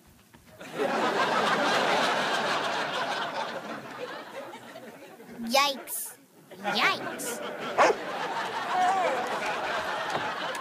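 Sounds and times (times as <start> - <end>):
laughter: 0.6 - 10.5
dog giving a short sharp bark: 7.8 - 8.0.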